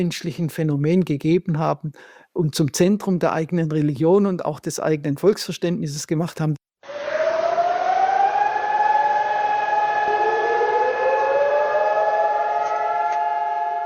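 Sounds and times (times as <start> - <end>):
speech: 0.0 - 6.6
nationwide memorial air-raid siren wailing: 6.8 - 13.8.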